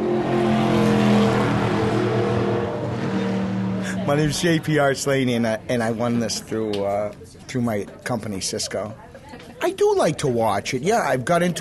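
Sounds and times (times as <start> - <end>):
stock car engine roaring on track: 0.0 - 4.6
speech: 4.1 - 11.5.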